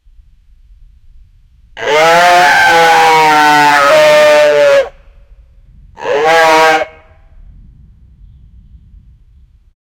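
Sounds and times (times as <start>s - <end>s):
deer fast loud call: 1.8s - 5.1s, 6.0s - 7.2s.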